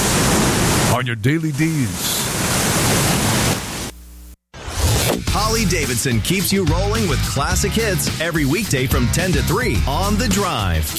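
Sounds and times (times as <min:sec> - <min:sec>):
pink noise hiss: 0:00.0 - 0:04.4
speech: 0:01.0 - 0:02.5, 0:05.5 - 0:10.9.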